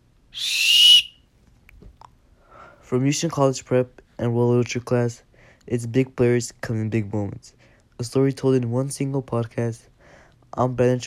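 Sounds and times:
referee blowing a shrill final whistle: 0.4s - 1.2s
speech: 2.9s - 9.9s, 10.5s - 11.0s.

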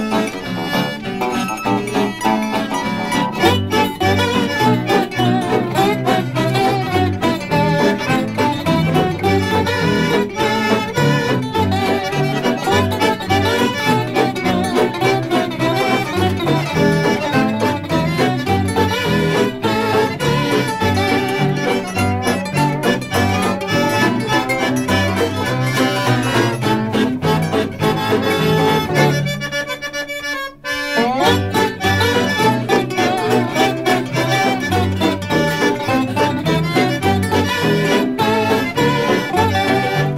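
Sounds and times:
loud full-band podcast outro music with punchy drums: 0.0s - 40.1s.

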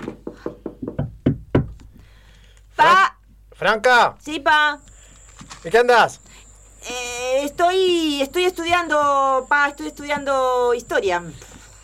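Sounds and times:
knocking on a wooden door: 0.0s - 1.8s
speech: 3.6s - 4.9s, 5.6s - 11.5s.

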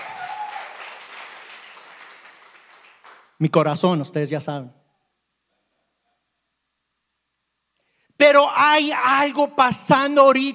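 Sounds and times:
crowd applauding: 0.0s - 3.4s
speech: 3.4s - 4.8s, 8.8s - 10.5s.

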